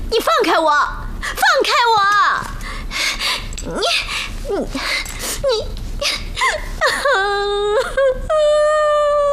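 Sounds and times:
speech: 0.1s - 2.5s, 3.7s - 9.0s
woman crying: 3.7s - 9.3s.

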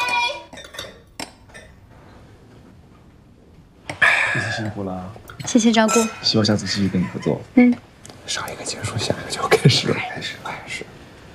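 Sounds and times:
glasses clinking together in a toast: 0.5s - 1.8s, 5.3s - 7.4s
speech: 4.4s - 11.0s.

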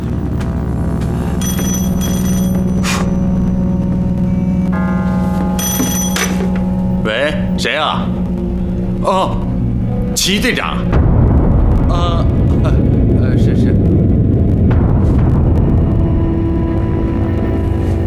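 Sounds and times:
steady low hum: 0.0s - 18.0s
telephone ringing in shrill bell-like bursts: 1.4s - 2.9s, 4.7s - 7.6s
person's voice: 9.0s - 9.5s, 10.1s - 10.9s, 11.9s - 13.8s.

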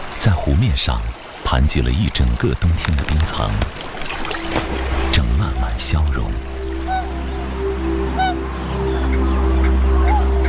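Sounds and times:
speech: 0.2s - 6.5s
steady low droning background: 1.8s - 10.4s
tundra swans bugling on a freshwater lake wetland in early spring: 3.8s - 10.4s.

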